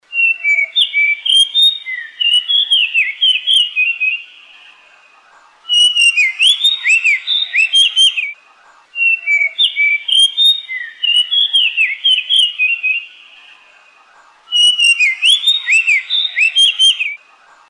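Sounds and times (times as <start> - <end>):
white-browed shortwing calling: 0.0 - 17.3.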